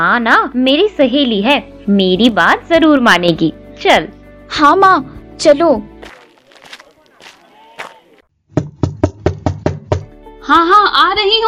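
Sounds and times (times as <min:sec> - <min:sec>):
speech: 0:00.0 - 0:05.9, 0:10.5 - 0:11.4
firm knocking on the door of a house: 0:08.5 - 0:10.1.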